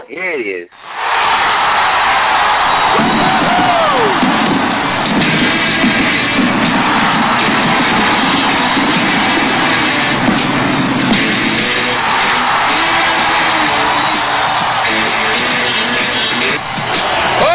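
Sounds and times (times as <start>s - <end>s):
speech: 0.1s - 1.4s
applause sound effect with cheering crowd: 0.7s - 17.5s
crowd whoops: 1.0s - 9.8s, 11.5s - 17.5s.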